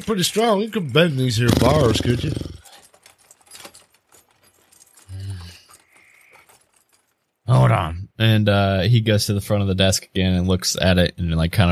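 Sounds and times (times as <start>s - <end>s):
speech: 0.0s - 2.6s, 8.2s - 11.7s
keys jangling: 2.3s - 7.4s.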